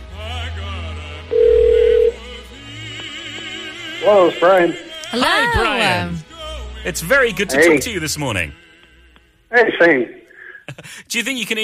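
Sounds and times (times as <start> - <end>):
electronic telephone ringing tone: 1.3 - 2.2
speech: 4.0 - 8.6, 9.5 - 11.6
laughter: 10.4 - 11.4.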